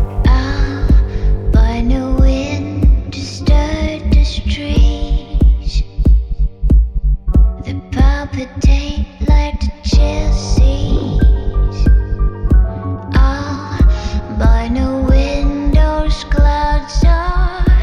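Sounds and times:
layered synth chords: 0.0s - 7.8s, 9.9s - 16.0s
deep steady kick drum: 0.0s - 17.8s
slow electronic pop song intro: 0.0s - 17.8s.

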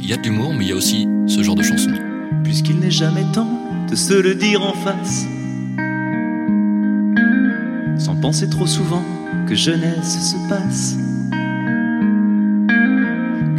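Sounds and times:
person singing in French: 0.0s - 5.7s, 8.0s - 11.2s, 13.4s - 13.5s
sustained steady instrumental chords: 0.0s - 13.5s
speech: 0.1s - 5.4s, 8.2s - 11.1s.

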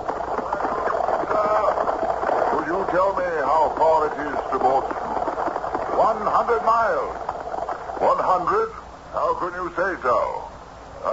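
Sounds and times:
black horse hooves clip-clopping on a winding road: 0.0s - 8.9s
speech: 6.0s - 7.3s, 8.0s - 10.4s.

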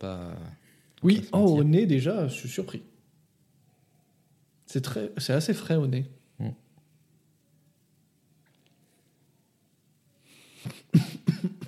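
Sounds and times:
speech: 0.0s - 2.9s, 4.7s - 6.6s
person coughing: 10.7s - 11.6s.

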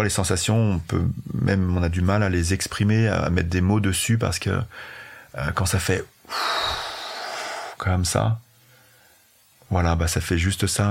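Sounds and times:
speech: 0.0s - 6.6s, 7.8s - 8.4s, 9.7s - 10.8s
person blowing out a forceful breath through the mouth: 6.3s - 7.8s.

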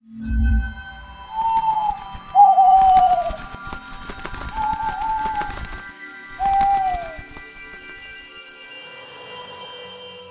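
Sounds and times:
birds cooing in an aviary: 1.3s - 3.6s, 4.2s - 7.5s.

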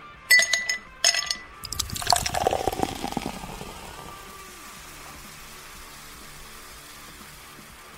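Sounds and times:
sharp glassy clinks: 0.3s - 2.5s
cocktail pouring into a glass at a beach bar: 0.4s - 5.2s.

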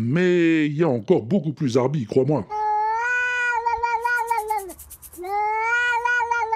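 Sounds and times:
speech: 0.0s - 2.6s
cat meowing at a window: 2.8s - 6.5s.

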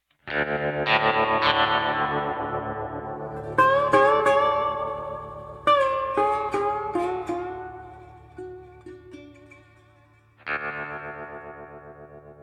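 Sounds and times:
podcast jingle of distorted effects-heavy guitar or synth chords: 0.4s - 9.4s.

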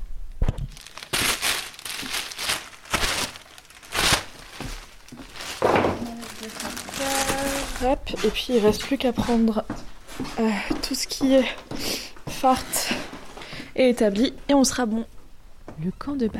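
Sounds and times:
gear stuffed into a large bag with crinkling material: 0.6s - 8.7s
speech: 7.8s - 13.1s, 13.8s - 15.2s, 15.8s - 16.3s.

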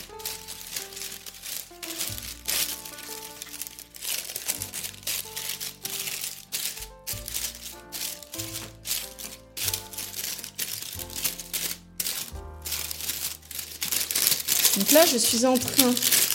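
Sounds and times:
parchment paper crinkling as it is pressed into a cake tin: 0.0s - 16.3s
soft music: 0.0s - 16.3s
speech: 14.9s - 16.2s.

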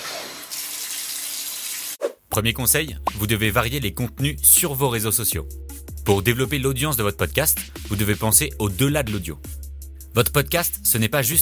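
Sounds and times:
shower water running: 0.0s - 2.0s
speech: 2.3s - 11.3s.

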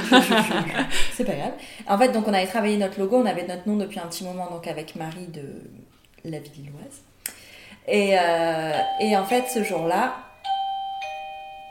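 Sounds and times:
laughter: 0.0s - 1.3s
speech: 0.1s - 10.2s
doorbell chiming in a ding-dong pattern: 8.7s - 11.6s.

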